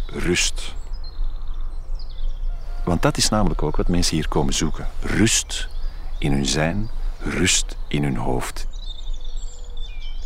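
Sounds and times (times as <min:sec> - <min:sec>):
birds singing outdoors: 0:00.0 - 0:10.2
steady low rumble of open air: 0:00.0 - 0:10.2
speech: 0:00.2 - 0:00.8, 0:02.9 - 0:08.7.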